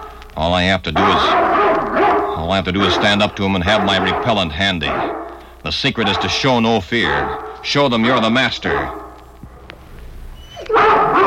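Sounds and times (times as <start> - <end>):
speech: 0.4 - 9.0
collie giving a drawn-out harmonic bark: 0.9 - 9.3, 10.4 - 11.2.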